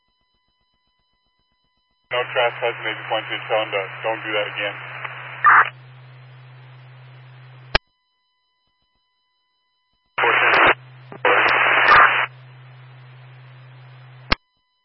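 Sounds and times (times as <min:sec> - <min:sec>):
speech: 0:02.1 - 0:05.6
radio transmissions with loud bursts of static: 0:02.1 - 0:07.8, 0:10.2 - 0:14.4
steady low hum: 0:02.1 - 0:07.8, 0:10.2 - 0:14.4.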